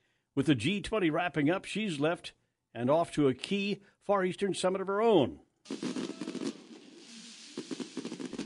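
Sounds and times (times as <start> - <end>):
speech: 0.4 - 6.0
fireworks crackling over a riverside: 5.6 - 8.4.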